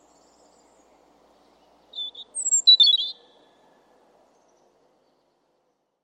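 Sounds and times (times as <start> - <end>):
European robin singing: 0.0 - 3.4.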